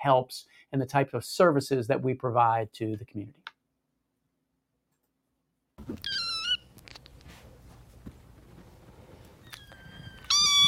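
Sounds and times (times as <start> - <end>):
speech: 0.0 - 3.4, 5.9 - 6.2
soft rustling: 5.8 - 10.6
foster kittens meowing: 5.9 - 6.6, 9.4 - 10.6.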